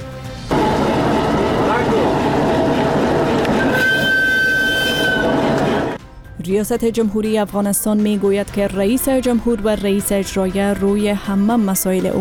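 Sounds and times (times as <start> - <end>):
freight train rumbling along the rails: 0.5 - 6.0
thin high-pitched squeal: 0.5 - 6.0
speech: 6.5 - 12.2.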